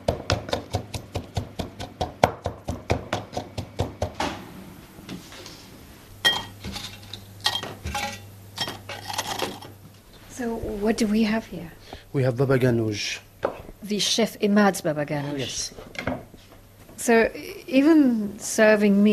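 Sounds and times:
garlic being smashed with quick steady pounding: 0:00.0 - 0:04.2
kitchen clattering and scraping: 0:06.2 - 0:09.8
speech: 0:10.4 - 0:13.2, 0:13.9 - 0:15.8, 0:17.0 - 0:19.1.

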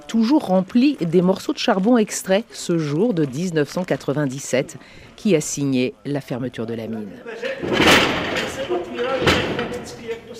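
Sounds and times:
speech: 0:00.1 - 0:10.3
lift door slamming shut at a former coal mine: 0:07.6 - 0:09.9
heavy clatter: 0:07.6 - 0:10.2.

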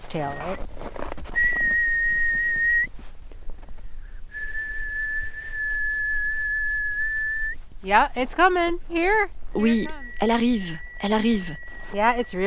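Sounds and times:
low rumble: 0:00.0 - 0:12.4
speech: 0:00.1 - 0:00.9, 0:07.8 - 0:12.4
person whistling to the aurora: 0:01.4 - 0:02.9, 0:04.3 - 0:07.6, 0:09.6 - 0:12.4.

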